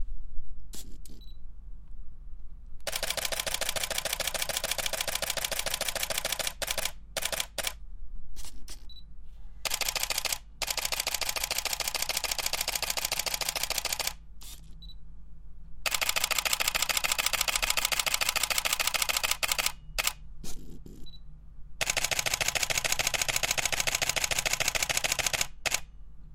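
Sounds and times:
camera focusing: 2.9s - 7.8s, 9.6s - 14.7s, 15.9s - 20.6s, 21.8s - 25.9s.

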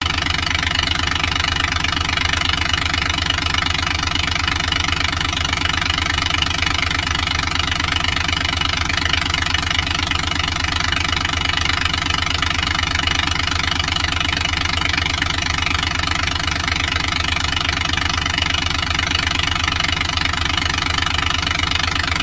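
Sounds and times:
diesel engine running in a cycle: 0.0s - 22.2s.

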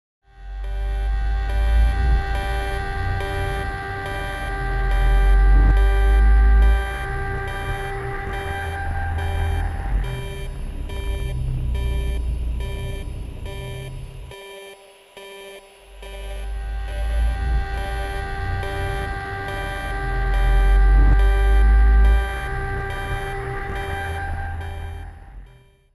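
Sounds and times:
horror thriller suspense signal background sound: 0.3s - 25.9s.

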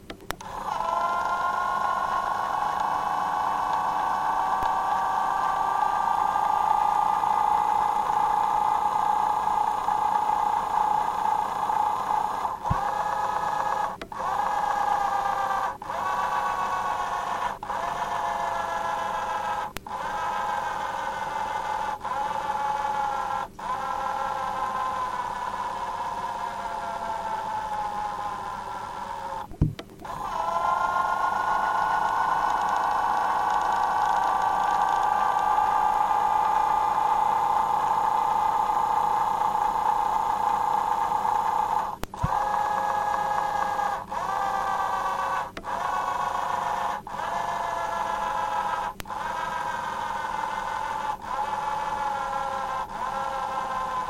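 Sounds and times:
small variable speed motor running: 0.0s - 54.0s.

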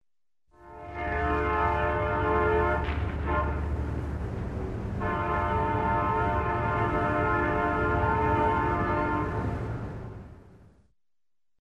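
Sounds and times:
distant locomotive horn: 0.5s - 4.2s, 4.9s - 10.4s
diesel locomotive: 0.6s - 10.9s.

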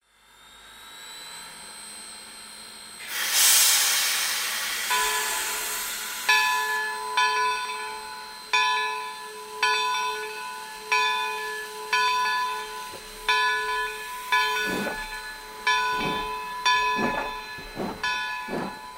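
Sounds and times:
steam locomotive departing without wagons: 3.0s - 18.9s.

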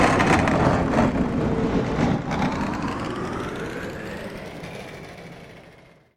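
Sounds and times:
low flowing sound rising upward: 0.0s - 6.1s.

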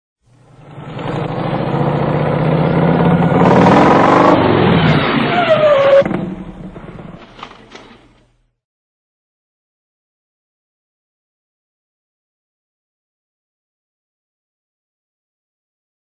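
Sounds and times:
motorcycle brakes on approach: 0.3s - 8.4s.

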